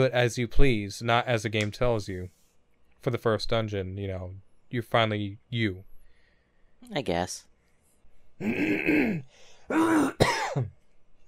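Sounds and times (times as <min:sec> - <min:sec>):
speech: 0:00.0 - 0:02.4, 0:03.0 - 0:05.9, 0:06.8 - 0:07.5, 0:08.4 - 0:10.8
low grunt: 0:08.4 - 0:10.2
person clearing throat with mucus: 0:08.4 - 0:10.7.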